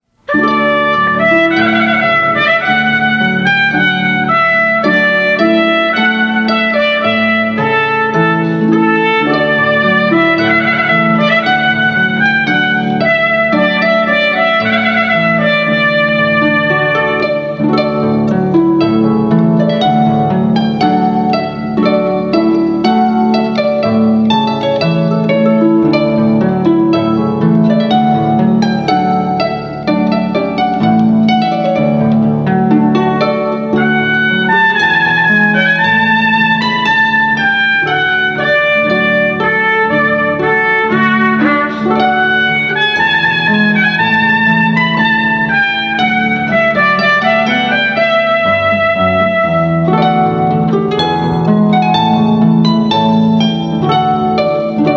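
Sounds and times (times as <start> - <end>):
harp playing ceremony music: 0.0 - 54.9.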